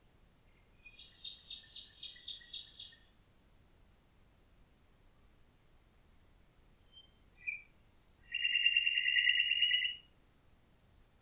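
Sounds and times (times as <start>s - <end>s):
common nightingale singing: 0.5s - 3.2s, 6.8s - 10.2s.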